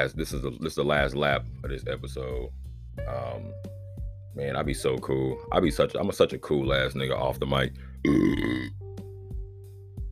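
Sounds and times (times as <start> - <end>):
speech: 0.0 - 3.8, 4.4 - 8.8
deep resonant burp: 8.0 - 8.8.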